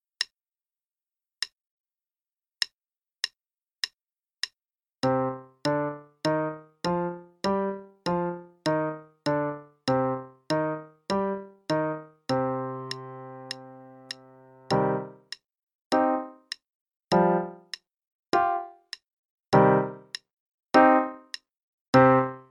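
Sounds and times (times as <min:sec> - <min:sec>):
piano five-finger patterns in C minor: 0:05.0 - 0:20.2, 0:20.8 - 0:22.4.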